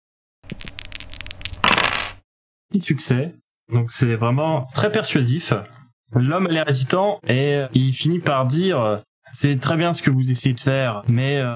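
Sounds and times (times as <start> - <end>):
dice rolling on a table: 0.5 - 2.2
speech: 2.8 - 11.5.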